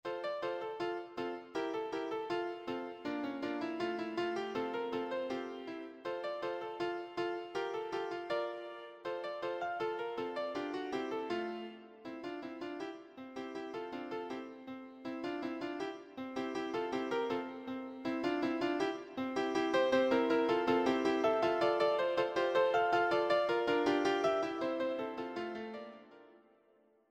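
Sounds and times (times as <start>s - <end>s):
piano: 0.0s - 26.8s.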